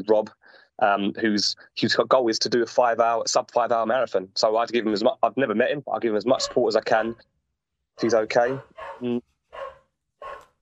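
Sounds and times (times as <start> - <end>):
speech: 0.0 - 7.3, 8.0 - 9.3
dog barking at the postman: 4.8 - 5.1, 6.3 - 7.2, 8.0 - 10.6.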